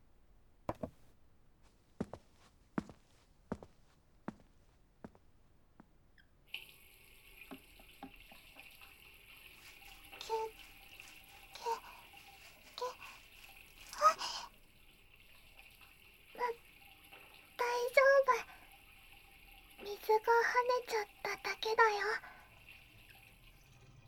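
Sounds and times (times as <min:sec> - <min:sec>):
taps and clicks of a mug being washed: 0:00.7 - 0:01.0
tap running water over a mug: 0:06.5 - 0:24.0.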